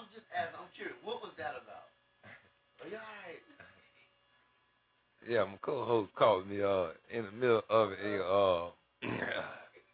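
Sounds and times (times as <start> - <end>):
speech: 5.2 - 9.6
radio host burping: 9.0 - 9.8.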